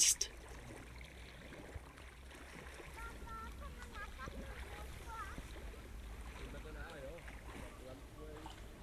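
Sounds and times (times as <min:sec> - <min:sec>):
paddle churning lake water beside a boat: 0:00.0 - 0:08.8.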